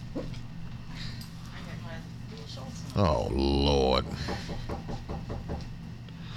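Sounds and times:
steady low hum: 0:00.0 - 0:06.3
speech: 0:03.0 - 0:05.0
knocking on a door: 0:04.2 - 0:05.7.

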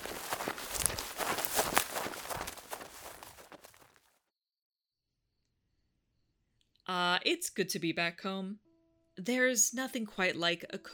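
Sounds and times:
hurried footsteps through a forest: 0:00.0 - 0:04.1
speech: 0:06.9 - 0:08.6, 0:09.2 - 0:10.9.

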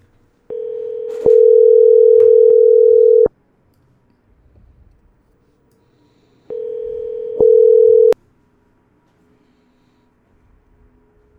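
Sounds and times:
telephone ringback tone on an outgoing call: 0:00.5 - 0:03.3, 0:06.5 - 0:08.2.

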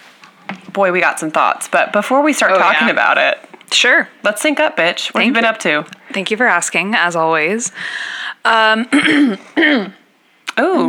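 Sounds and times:
speech: 0:00.8 - 0:10.0, 0:10.6 - 0:10.8
person clearing throat in rasping bursts: 0:08.9 - 0:10.1.

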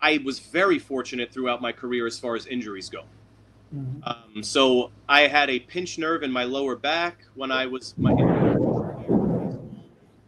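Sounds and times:
speech: 0:00.0 - 0:08.6
deep rolling thunder from a huge storm in the West Village: 0:08.0 - 0:10.0.

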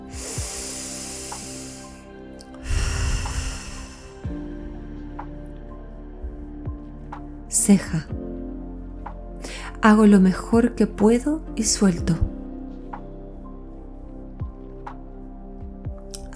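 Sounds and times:
deep inhale through the nose and exhale through the mouth: 0:00.0 - 0:04.8, 0:09.4 - 0:09.7
speech: 0:07.6 - 0:08.2, 0:09.8 - 0:12.4.

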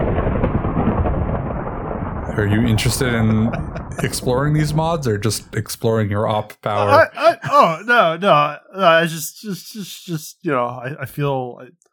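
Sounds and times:
thunder rumbling in a video game thunderstorm: 0:00.0 - 0:05.7
laughter: 0:02.4 - 0:05.4, 0:06.8 - 0:08.4
speech: 0:02.4 - 0:11.8.

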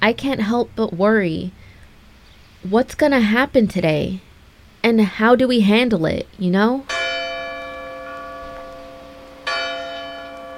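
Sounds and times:
speech: 0:00.0 - 0:01.6, 0:02.6 - 0:07.0
church bell tolling with a deep resonant tone: 0:06.8 - 0:10.5.

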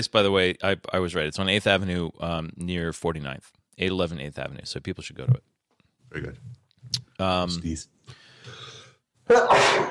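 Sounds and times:
speech: 0:00.0 - 0:05.5, 0:06.1 - 0:08.6, 0:09.3 - 0:09.9
person sneezing: 0:09.3 - 0:09.9.

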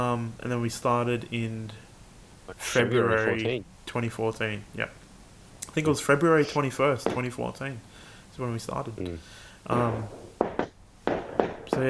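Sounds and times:
speech: 0:00.0 - 0:01.9, 0:02.5 - 0:05.0, 0:05.8 - 0:10.3
fireworks popping outside: 0:05.8 - 0:07.7, 0:09.7 - 0:11.8.

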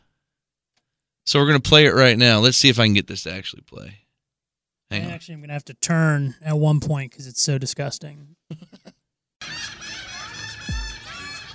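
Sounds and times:
speech: 0:01.3 - 0:04.0, 0:04.9 - 0:09.8
dense chorus of seagulls calling and squawking: 0:09.4 - 0:11.5.

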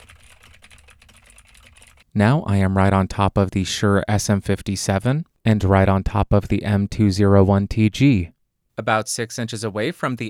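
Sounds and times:
typing on a computer keyboard with Gateron Blue switches: 0:00.0 - 0:02.0
speech: 0:02.1 - 0:10.2.

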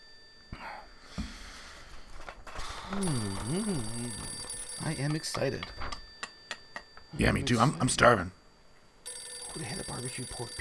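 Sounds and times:
telephone ringing through the line calling a restaurant: 0:01.9 - 0:08.4, 0:09.0 - 0:10.5
speech: 0:02.9 - 0:05.9, 0:07.1 - 0:08.4, 0:09.6 - 0:10.5.

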